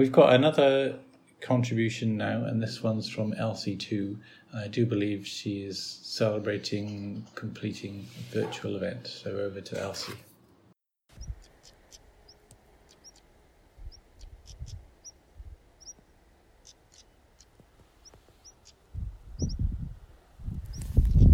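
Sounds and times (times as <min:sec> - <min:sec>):
speech: 0:00.0 - 0:10.3
soft breezy background: 0:00.0 - 0:21.3
low rumbling wind or handling noise: 0:11.1 - 0:21.3
small birds chirping outdoors on a coast path: 0:11.1 - 0:21.3.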